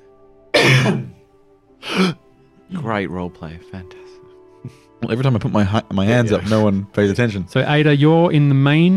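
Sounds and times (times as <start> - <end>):
person coughing: 0.6 - 1.2, 1.8 - 2.2
speech: 2.0 - 2.2, 2.8 - 8.9.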